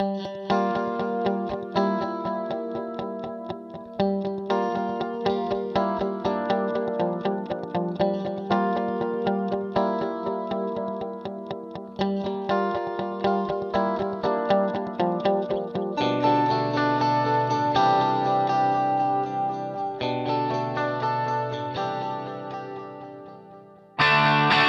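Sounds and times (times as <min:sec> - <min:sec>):
guitar with ripple effect: 0:00.0 - 0:24.6.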